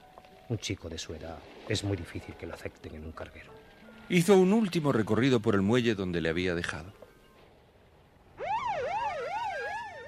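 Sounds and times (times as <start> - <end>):
speech: 0.5 - 7.0
police siren wailing: 8.4 - 10.0.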